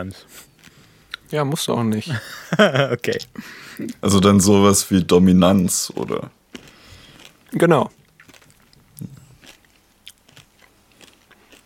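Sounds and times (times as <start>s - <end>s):
speech: 0.0s - 0.5s, 1.3s - 6.4s, 7.5s - 8.0s
crisps being chewed: 0.4s - 1.4s, 5.5s - 11.6s
laughter: 2.1s - 4.0s.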